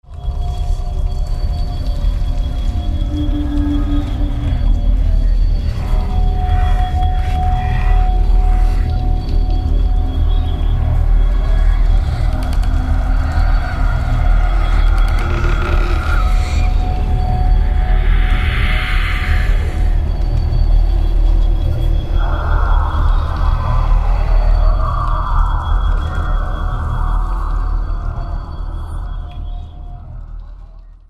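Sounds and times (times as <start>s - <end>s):
horror music mix: 0.0s - 31.0s.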